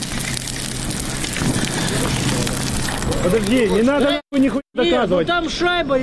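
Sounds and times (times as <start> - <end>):
campfire burning with roar, crackles and pops: 0.0 - 4.5
speech: 3.2 - 6.0.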